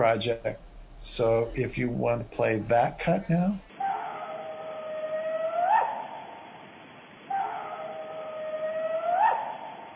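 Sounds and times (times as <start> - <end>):
speech: 0.0 - 3.7
faint hiss: 0.0 - 9.9
coyote-like howls of unknown origin: 3.7 - 6.6, 7.2 - 9.9.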